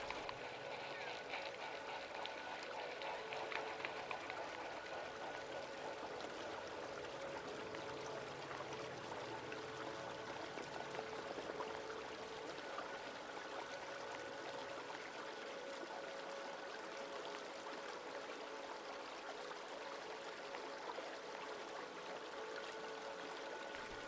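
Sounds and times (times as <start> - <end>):
startled eider flock running and splashing across a river: 0.0 - 12.9, 23.7 - 24.0
flowing river water: 0.0 - 24.0.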